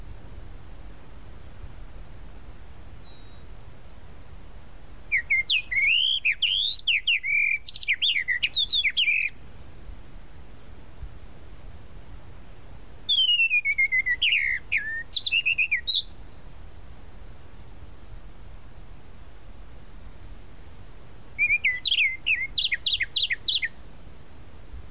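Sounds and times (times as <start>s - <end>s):
tropical mockingbird singing varied whistles: 5.1s - 9.4s, 12.8s - 16.2s, 21.4s - 23.8s.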